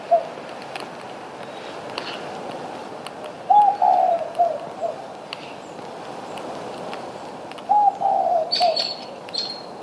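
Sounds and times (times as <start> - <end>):
Spotted Dove giving low soft coo phrases on Maui, Hawaii: 0.0 - 0.4, 3.5 - 5.1, 7.7 - 9.6
quiet background bird chirping: 3.3 - 6.5, 7.1 - 9.8.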